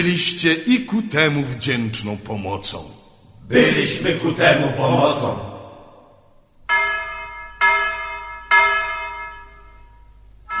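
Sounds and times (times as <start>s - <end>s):
speech: 0.0s - 5.5s
church bell struck by hammer clanging: 6.7s - 10.5s.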